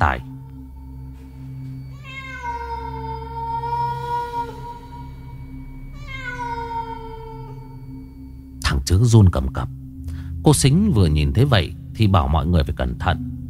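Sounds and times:
low steady hum: 0:00.0 - 0:13.4
cat meowing: 0:01.9 - 0:05.0, 0:05.9 - 0:07.8
speech: 0:08.9 - 0:09.8, 0:10.4 - 0:13.4.

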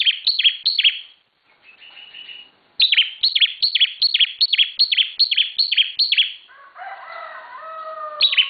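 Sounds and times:
Bar-winged prinia singing sharp descending high notes: 0:00.0 - 0:01.2, 0:02.0 - 0:06.5, 0:08.2 - 0:08.4.

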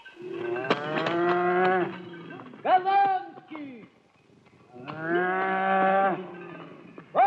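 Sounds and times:
herd of cows mooing while lining up in a row: 0:00.2 - 0:02.6, 0:04.8 - 0:07.1.

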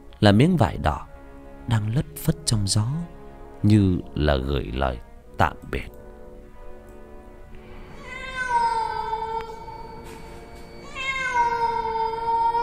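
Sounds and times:
speech: 0:00.2 - 0:01.1, 0:01.7 - 0:06.0
black cat meowing: 0:08.0 - 0:10.0, 0:10.8 - 0:12.6.

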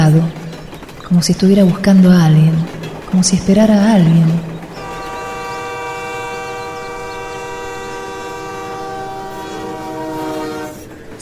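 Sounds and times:
rumbling rail noise of a train at a station: 0:00.0 - 0:11.1
speech: 0:00.1 - 0:00.4, 0:01.1 - 0:04.5
train horn at a station: 0:04.7 - 0:11.1.

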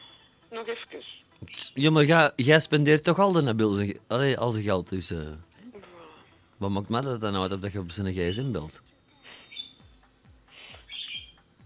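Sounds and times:
faint low sounds: 0:00.0 - 0:11.6
speech: 0:00.5 - 0:05.5, 0:06.6 - 0:09.0
small pet bird chirping at home: 0:09.2 - 0:11.5.

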